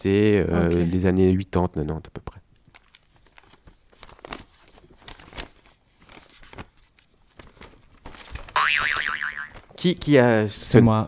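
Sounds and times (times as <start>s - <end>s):
speech: 0.0s - 2.4s, 9.8s - 11.0s
paper road map being folded with crinkly rustles: 2.6s - 8.6s, 9.4s - 10.2s
loud wobbling boing sound effect: 8.6s - 9.6s.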